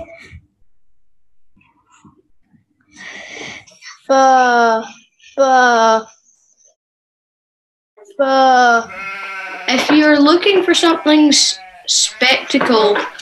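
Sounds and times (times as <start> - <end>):
speech: 4.1 - 6.1, 8.2 - 9.1, 9.7 - 13.2
sheep tended by a shepherd bleating: 8.8 - 9.9, 10.8 - 13.2.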